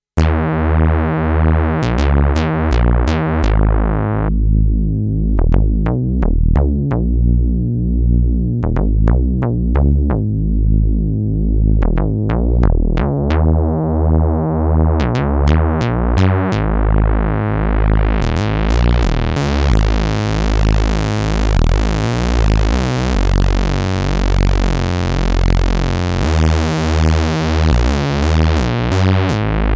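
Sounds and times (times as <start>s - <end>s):
Dominion X bass synthesizer: 0.2s - 29.7s.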